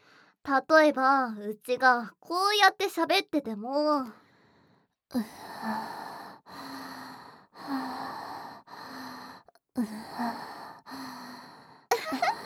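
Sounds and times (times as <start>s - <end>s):
speech: 0.5s - 4.2s, 5.1s - 6.0s
girl breathing with sighing breaths: 4.2s - 12.4s.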